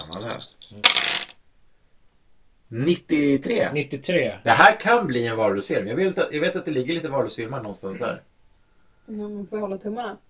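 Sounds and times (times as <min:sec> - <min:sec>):
dice rolled in a game: 0:00.0 - 0:01.4
speech: 0:02.7 - 0:08.3, 0:09.1 - 0:10.2.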